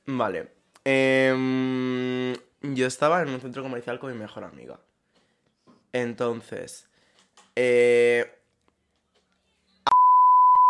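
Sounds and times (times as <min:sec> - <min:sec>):
speech: 0:00.1 - 0:04.9, 0:05.9 - 0:06.9, 0:07.6 - 0:08.4
steady high-pitched censor beep: 0:09.9 - 0:10.6.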